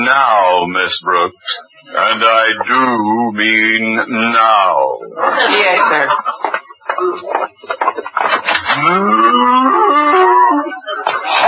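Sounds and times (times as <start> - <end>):
speech: 0.1 - 11.4
laughter: 2.1 - 11.4
cow mooing: 8.7 - 10.7.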